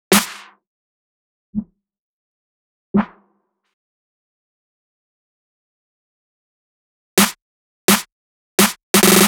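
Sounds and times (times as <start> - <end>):
snare drum loop: 0.1 - 0.5, 7.2 - 9.2.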